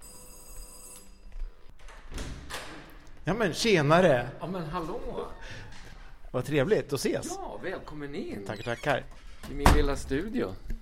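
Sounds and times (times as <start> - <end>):
apartment doorbell ringing with buzzing electric tone: 0.0 - 1.4
speech: 3.3 - 5.6, 6.3 - 10.7.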